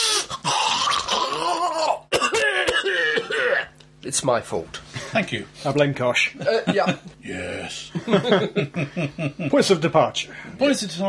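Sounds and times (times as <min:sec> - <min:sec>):
person coughing in a harsh fit: 0:00.8 - 0:03.8
speech: 0:04.1 - 0:11.0
laughter: 0:07.9 - 0:09.6.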